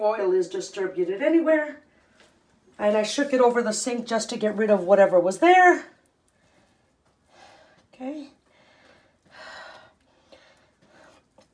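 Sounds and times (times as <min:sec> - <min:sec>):
speech: 0:00.0 - 0:01.9, 0:02.8 - 0:05.9
heavy breathing: 0:06.4 - 0:11.5.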